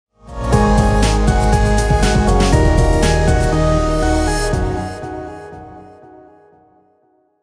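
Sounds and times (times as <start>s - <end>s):
funny happy summer travel vlog music sting: 0.4s - 5.3s.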